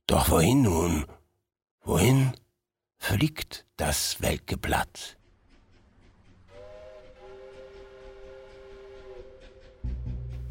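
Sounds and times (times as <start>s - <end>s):
speech: 0.1s - 1.2s, 1.8s - 2.4s, 3.0s - 5.2s
train rolling past: 5.2s - 10.4s
long steady train whistle: 6.5s - 10.4s.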